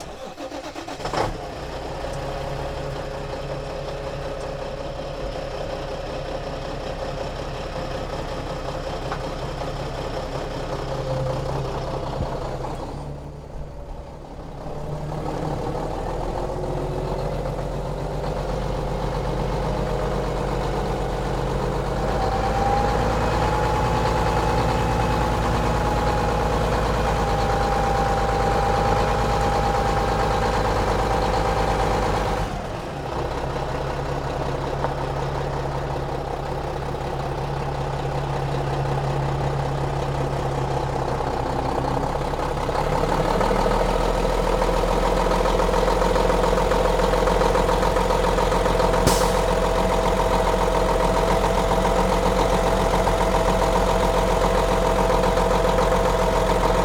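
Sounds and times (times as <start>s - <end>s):
semi truck engine starting: 0.0s - 56.8s.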